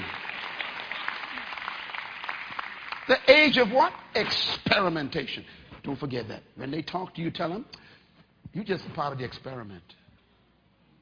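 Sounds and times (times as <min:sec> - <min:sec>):
audience clapping: 0:00.0 - 0:04.0
speech: 0:03.1 - 0:07.8, 0:08.5 - 0:10.0.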